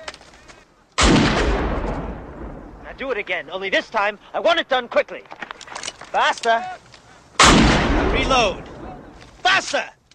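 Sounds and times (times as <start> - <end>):
pistol shot during a reload-and-fire drill: 1.0 - 2.6, 7.4 - 8.8
booming rumble after a pistol shot: 1.0 - 3.2, 7.4 - 9.2
speech: 3.0 - 5.3, 6.1 - 6.8, 8.1 - 8.7, 9.6 - 10.0.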